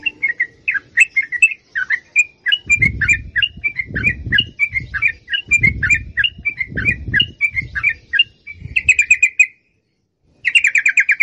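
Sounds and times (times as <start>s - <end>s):
yellow-vented bulbul long rapid song: 0.0s - 11.2s
dull low thumps: 2.7s - 7.8s.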